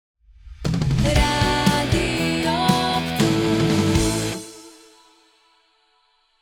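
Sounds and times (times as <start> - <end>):
rock music stinger: 1.0 - 4.6.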